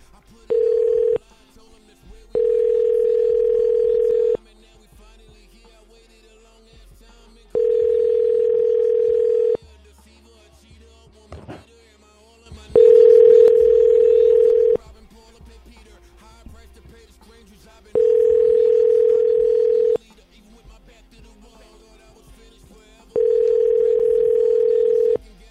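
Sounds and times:
telephone ringback tone through a handset: 0:00.5 - 0:01.2, 0:02.4 - 0:04.4, 0:07.6 - 0:09.6, 0:12.8 - 0:14.8, 0:18.0 - 0:20.0, 0:23.2 - 0:25.2.

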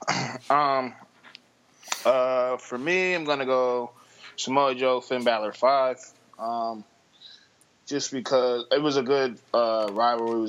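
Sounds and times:
throat clearing: 0:00.0 - 0:00.8
speech: 0:00.5 - 0:01.0, 0:02.0 - 0:06.9, 0:07.9 - 0:10.4.

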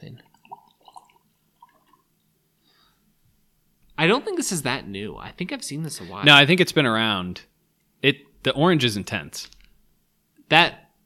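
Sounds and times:
whiskey poured into a glass: 0:00.1 - 0:02.2
speech: 0:04.0 - 0:09.6, 0:10.5 - 0:10.8.

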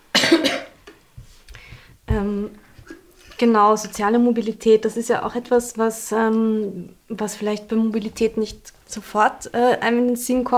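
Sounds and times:
single loud harsh cough: 0:00.1 - 0:00.8
faint breaths or throat sounds: 0:01.2 - 0:03.4
speech: 0:02.1 - 0:02.6, 0:03.4 - 0:10.5.

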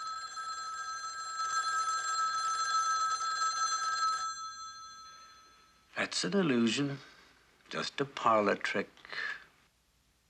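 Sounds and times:
telephone bell ringing in a shrill metallic trill: 0:00.0 - 0:05.9
speech: 0:06.0 - 0:07.1, 0:07.7 - 0:09.4.

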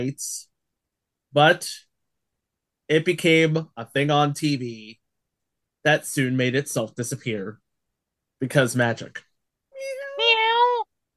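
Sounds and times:
speech: 0:00.0 - 0:00.5, 0:01.3 - 0:01.9, 0:02.9 - 0:05.0, 0:05.8 - 0:07.6, 0:08.4 - 0:10.0
cat meowing: 0:09.8 - 0:10.9.

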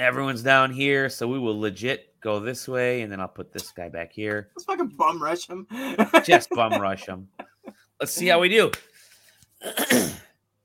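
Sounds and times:
speech: 0:00.0 - 0:07.4, 0:08.0 - 0:08.9, 0:09.6 - 0:10.2
laughter: 0:04.9 - 0:08.5
throat clearing: 0:09.6 - 0:10.3.

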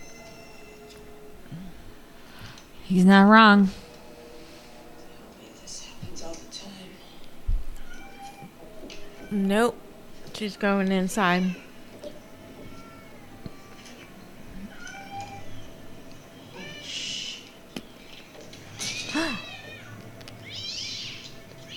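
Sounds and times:
speech: 0:02.9 - 0:03.8, 0:09.4 - 0:09.8, 0:10.4 - 0:11.6
many cats meowing and yowling: 0:07.8 - 0:09.4, 0:12.5 - 0:15.7, 0:16.4 - 0:17.5, 0:18.8 - 0:21.7.

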